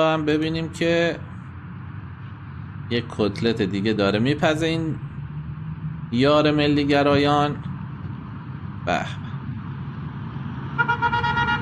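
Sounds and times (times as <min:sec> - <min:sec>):
speech: 0:00.0 - 0:01.3, 0:02.9 - 0:05.1, 0:06.1 - 0:07.7, 0:08.8 - 0:09.2
car horn toots: 0:10.8 - 0:11.6.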